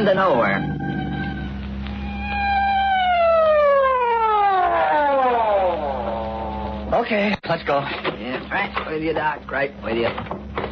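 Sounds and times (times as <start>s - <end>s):
speech: 0.0s - 0.8s, 7.0s - 10.4s
emergency vehicle siren wailing: 0.0s - 6.9s.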